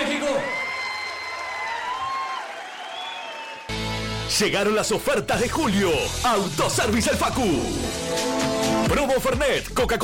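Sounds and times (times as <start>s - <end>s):
crowd clapping: 0.0s - 4.0s
sustained whistle-like tones: 2.4s - 3.7s
speech: 4.3s - 10.0s.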